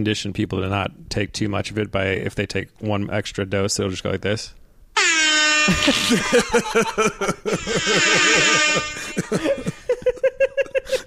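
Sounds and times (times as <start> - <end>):
speech: 0.0 - 4.6, 5.6 - 9.8
air horn sound effect played from a phone app: 5.0 - 6.1, 7.7 - 9.6
laughter: 5.7 - 11.0.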